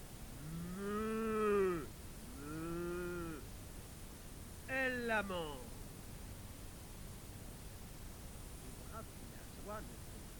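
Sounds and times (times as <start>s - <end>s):
faint hiss: 0.0s - 10.3s
big cow mooing: 0.4s - 3.4s
speech: 5.1s - 5.6s.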